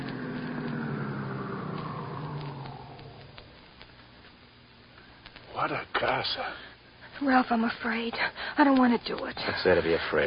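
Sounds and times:
car engine humming and winding down as the car pulls up and stops: 0.0s - 3.6s
faint clicks: 0.0s - 6.3s, 8.2s - 9.6s
speech: 5.6s - 10.2s.

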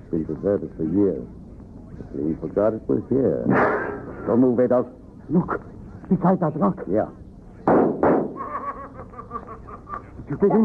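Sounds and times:
speech: 0.1s - 1.4s, 2.0s - 7.2s, 10.3s - 10.6s
gunshots in a shoot-out near an old mine entrance: 7.7s - 8.4s
laughter: 8.4s - 10.6s.

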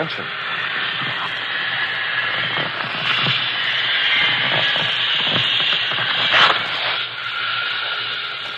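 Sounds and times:
speech: 0.0s - 1.4s
air hissing from the opened valve of an inflating rubber raft: 0.0s - 8.5s
clicks and bumps underneath a rubber raft: 2.3s - 7.0s.

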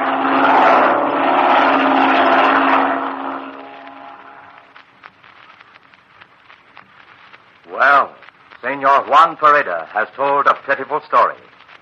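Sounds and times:
propeller airplane engine droning: 0.0s - 4.6s
speech: 9.0s - 11.5s.

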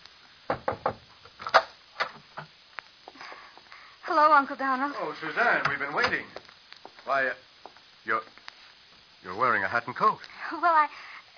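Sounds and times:
wooden knocks on library door: 0.5s - 1.0s
speech: 4.2s - 6.4s, 7.1s - 8.4s, 9.3s - 11.1s.

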